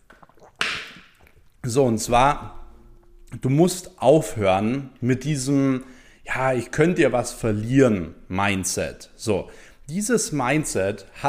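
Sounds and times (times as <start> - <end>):
person sipping water: 0.0 - 1.6
speech: 0.4 - 2.6, 3.3 - 11.2.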